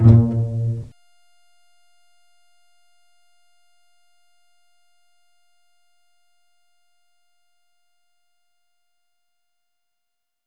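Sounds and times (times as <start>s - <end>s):
pizzicato strings playing note A-sharp 2: 0.0s - 0.9s.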